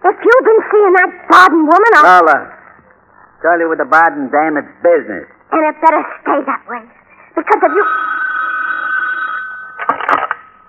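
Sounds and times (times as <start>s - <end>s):
speech: 0.1s - 2.6s, 3.4s - 8.2s, 10.1s - 10.3s
telephone bell ringing: 7.6s - 10.6s
telephone clunk: 9.8s - 10.4s.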